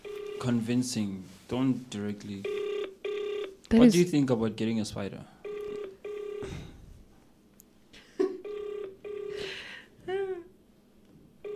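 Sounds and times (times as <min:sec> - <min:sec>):
telephone dialing and ringing beeps: 0:00.0 - 0:00.5, 0:02.4 - 0:03.5, 0:05.4 - 0:06.5, 0:08.4 - 0:09.4
speech: 0:00.4 - 0:02.6, 0:03.7 - 0:05.3.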